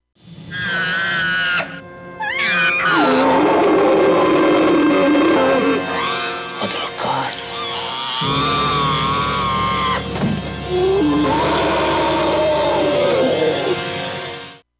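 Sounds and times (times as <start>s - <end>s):
killer whale high wavering whistles and squealing pulsed cries: 0.5s - 6.3s, 7.5s - 10.0s, 10.7s - 13.9s.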